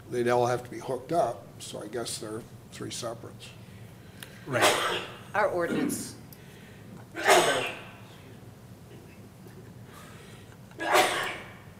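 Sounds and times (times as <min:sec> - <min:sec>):
speech: 0:00.1 - 0:03.6, 0:04.5 - 0:06.2
person sneezing: 0:04.5 - 0:05.9, 0:07.2 - 0:08.0, 0:10.8 - 0:11.6.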